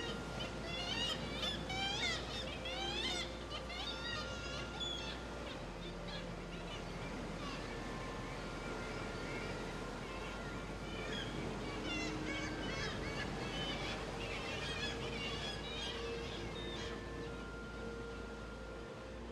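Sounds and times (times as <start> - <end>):
kittiwakes calling at a colony on vertical black rocks: 0.0 - 19.3
steady low engine rumble: 0.0 - 19.3
wind: 0.0 - 19.3.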